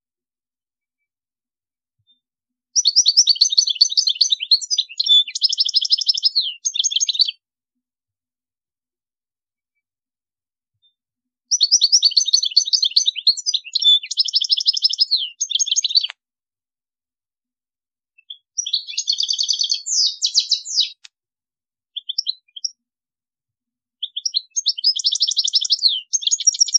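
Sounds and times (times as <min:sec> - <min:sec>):
European goldfinch singing twitters and buzzy trills: 0:02.8 - 0:07.4, 0:11.5 - 0:16.1, 0:18.2 - 0:21.0, 0:22.0 - 0:22.8, 0:24.0 - 0:26.7.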